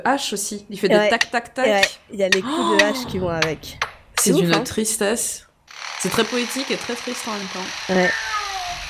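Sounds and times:
speech: 0.0s - 8.8s
cat meowing: 8.1s - 8.8s.

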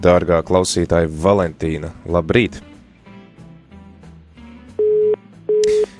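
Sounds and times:
speech: 0.0s - 2.7s
telephone busy signal after a call's line dropped: 4.8s - 5.9s.

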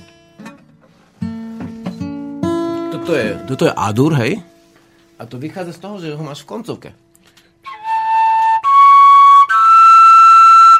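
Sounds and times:
speech: 3.0s - 4.5s, 5.2s - 7.0s
hollow pipe whistle blown: 7.6s - 10.7s.

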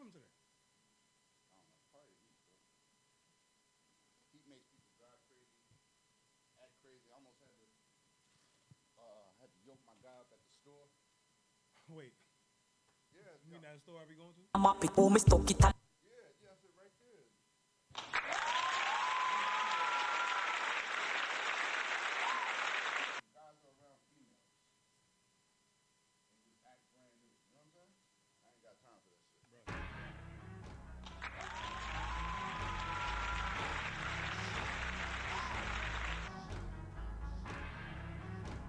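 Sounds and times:
speech: 11.9s - 12.2s, 13.2s - 15.7s
loud applause: 17.9s - 23.2s, 31.0s - 38.6s.

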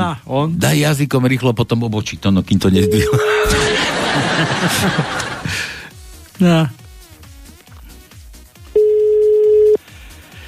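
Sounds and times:
speech: 0.1s - 5.7s, 6.4s - 6.8s
phone ringback tone beep while the call goes unanswered: 2.8s - 3.8s, 8.8s - 9.8s
laughter: 2.9s - 5.8s.

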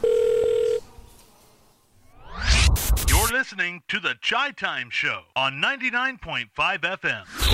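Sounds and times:
steady low telephone beep as a call is placed: 0.0s - 0.8s
speech: 3.4s - 7.4s.

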